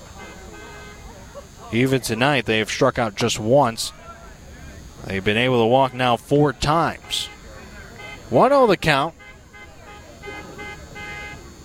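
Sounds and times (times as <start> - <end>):
car horns honking around a baseball game: 0.0 - 1.6, 5.8 - 11.6
noisy background: 0.0 - 11.6
speech: 1.7 - 4.0, 5.0 - 7.3, 8.3 - 9.2.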